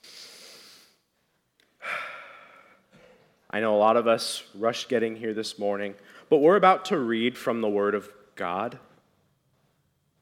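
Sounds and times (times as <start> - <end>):
group at a morning gathering taking a slow deep breath together: 0.0 - 3.4, 6.0 - 6.3
speech: 3.5 - 8.9.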